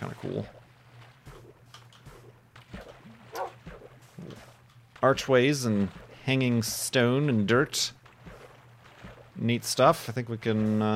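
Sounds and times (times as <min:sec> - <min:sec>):
steady low hum: 0:00.0 - 0:10.9
speech: 0:00.1 - 0:00.6, 0:05.0 - 0:08.0, 0:09.4 - 0:10.9
wolf barking: 0:03.3 - 0:04.4.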